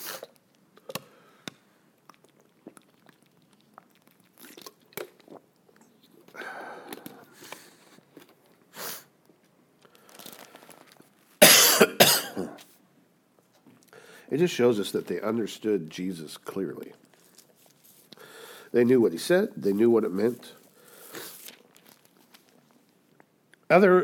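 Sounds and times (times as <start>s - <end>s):
person coughing from a tickle in the throat: 11.4s - 12.6s
speech: 14.4s - 17.0s, 18.8s - 20.6s, 23.7s - 24.0s.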